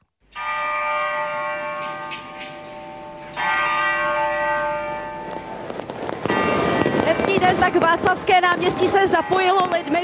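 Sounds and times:
large tower clock bell striking: 0.3 - 7.1
fireworks crackling: 3.4 - 10.0
speech: 7.7 - 10.0.

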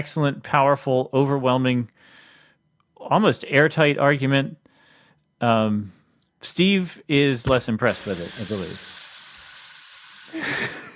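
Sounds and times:
speech: 0.0 - 2.2, 3.0 - 4.6, 5.4 - 9.0
air hissing out of a balloon: 7.8 - 10.9.

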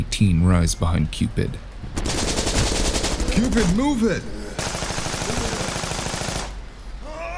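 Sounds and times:
speech: 0.0 - 2.2, 3.4 - 5.4
rapid gunfire in an alley fight scene: 2.0 - 4.0, 4.6 - 6.6.

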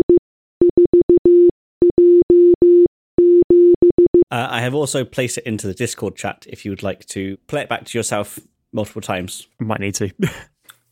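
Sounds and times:
Morse code beeps from a keyed electronic tone: 0.0 - 4.2
speech: 4.4 - 10.5.

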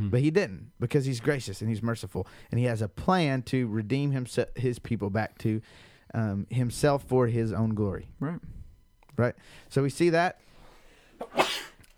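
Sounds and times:
speech: 0.0 - 8.6, 9.2 - 10.4, 11.2 - 11.7
person sneezing: 11.2 - 11.9.

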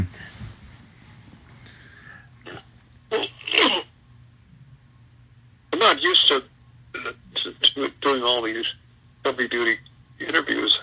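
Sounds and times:
faint low hum: 0.0 - 10.8
person clearing throat: 2.4 - 3.8
speech: 6.0 - 10.8.

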